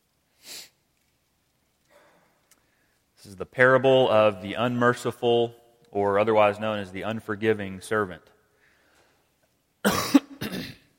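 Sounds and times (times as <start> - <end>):
speech: 3.2 - 8.3
person coughing while getting over a cough: 9.8 - 10.9.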